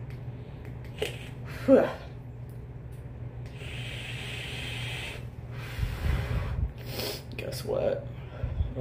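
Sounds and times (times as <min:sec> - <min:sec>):
low hum: 0:00.0 - 0:08.7
speech: 0:01.7 - 0:02.0
steady hissing stream of liquid: 0:03.5 - 0:06.4.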